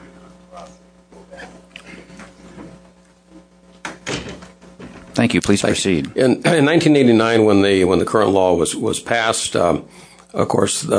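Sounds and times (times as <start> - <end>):
door pushed shut: 3.8 - 5.0
speech: 5.2 - 10.9.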